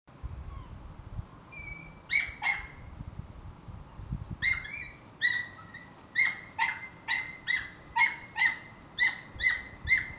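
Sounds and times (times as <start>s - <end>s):
dog giving high sharp yips: 1.6s - 2.8s, 4.4s - 10.1s.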